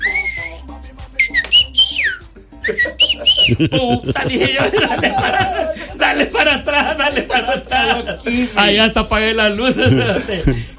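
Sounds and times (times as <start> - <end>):
person imitating a whistle with sliding tonal whistles: 0.0 - 3.7
laughter: 2.4 - 8.9, 9.5 - 10.7
speech: 3.5 - 10.7
breathy voiced sounds: 5.3 - 6.1, 7.7 - 8.7, 9.9 - 10.7.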